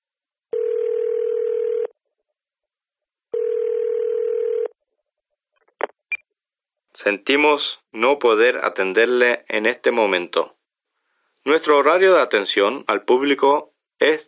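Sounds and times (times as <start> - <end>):
telephone ringing tone: 0.5 - 2.0, 3.3 - 4.8
speech: 7.0 - 10.6, 11.4 - 14.2.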